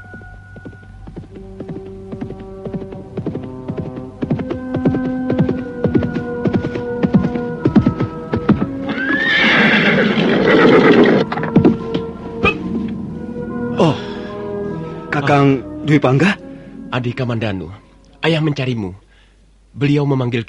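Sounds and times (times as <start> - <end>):
horse hooves clip-clopping with a rider: 0.0 - 12.6
horse neighing: 8.8 - 11.3
speech: 15.4 - 16.4, 17.0 - 19.0, 19.7 - 20.4.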